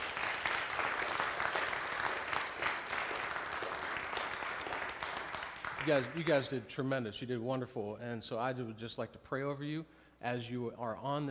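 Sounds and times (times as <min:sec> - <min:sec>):
audience applause: 0:00.0 - 0:06.4
speech: 0:05.8 - 0:11.2.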